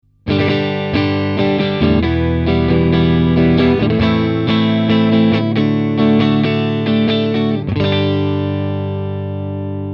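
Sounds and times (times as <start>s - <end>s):
Strat Am Pro electric guitar strumming: 0.0s - 9.9s.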